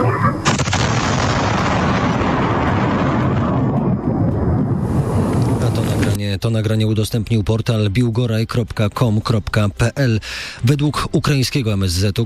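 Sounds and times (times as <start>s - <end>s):
loud deep cruise missile explosion: 0.4s - 6.0s
speech: 6.4s - 12.2s.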